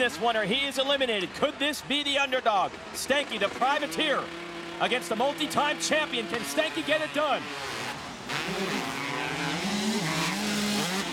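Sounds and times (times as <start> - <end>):
speech: 0.0 - 7.8
motocross bike engines revving hard during a race: 1.2 - 11.1.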